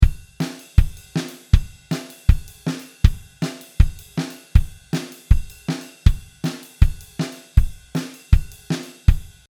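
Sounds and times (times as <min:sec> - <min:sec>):
drum kit cymbals from overhead microphones: 0:00.0 - 0:09.4.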